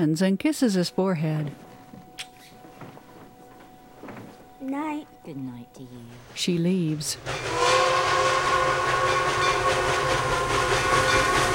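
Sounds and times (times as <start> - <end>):
speech: 0.0 - 1.7, 4.6 - 9.4
steam engine chugging to a stop: 6.1 - 11.5.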